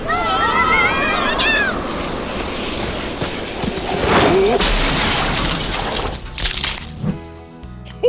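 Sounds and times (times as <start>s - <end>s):
loud sleigh crash with cracking and shattering: 0.7s - 7.0s
clattering hoofbeats: 1.8s - 5.0s
debris settling: 2.1s - 7.1s.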